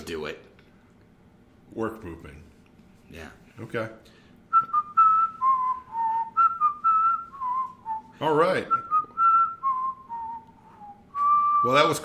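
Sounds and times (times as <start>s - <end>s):
speech: 0.1s - 0.5s, 1.7s - 2.5s, 3.1s - 4.8s, 8.2s - 8.8s, 11.6s - 12.0s
person whistling a slow sustained melody: 4.5s - 12.0s.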